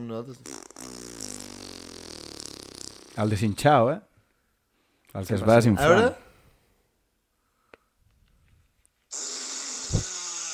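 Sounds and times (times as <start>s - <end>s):
speech: 0.0s - 1.0s, 3.2s - 4.1s, 5.1s - 6.2s
person blowing a raspberry with their lips imitating a fart: 0.4s - 3.2s, 9.2s - 10.5s.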